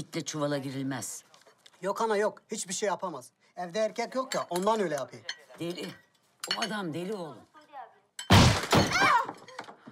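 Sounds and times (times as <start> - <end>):
speech: 0.0 - 7.5
large stone smashing through a door: 8.3 - 9.6.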